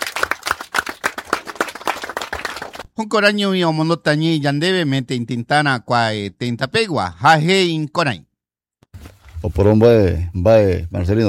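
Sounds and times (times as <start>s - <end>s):
audience applause at a gathering: 0.0s - 2.9s
speech: 3.0s - 8.3s, 9.4s - 11.2s.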